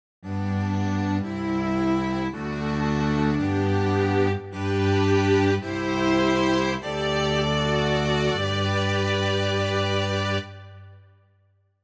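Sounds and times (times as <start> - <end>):
string quartet on a keyboard workstation: 0.3 - 10.9.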